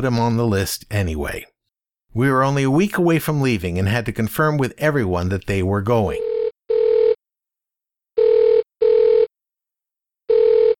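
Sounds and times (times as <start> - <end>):
speech: 0.0 - 1.5, 2.1 - 6.3
telephone ringing with a steady electronic tone: 6.2 - 7.2, 8.2 - 9.3, 10.3 - 10.7.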